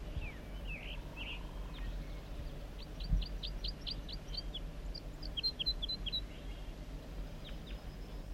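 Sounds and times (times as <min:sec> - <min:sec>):
low rumble: 0:00.0 - 0:08.3
wild birdsong outdoors: 0:00.0 - 0:08.3.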